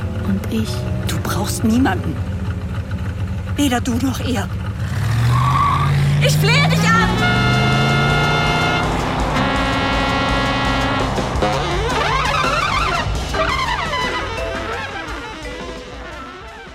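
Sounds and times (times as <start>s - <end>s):
speeding car racing along: 0.0s - 16.7s
speech: 0.3s - 2.4s, 3.6s - 4.6s, 6.2s - 7.5s
car horns honking: 5.3s - 16.7s.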